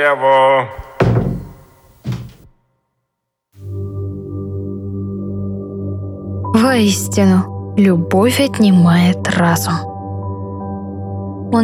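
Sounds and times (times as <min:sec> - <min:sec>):
speech: 0:00.0 - 0:00.9, 0:06.7 - 0:09.9
door being gently closed: 0:00.8 - 0:02.5.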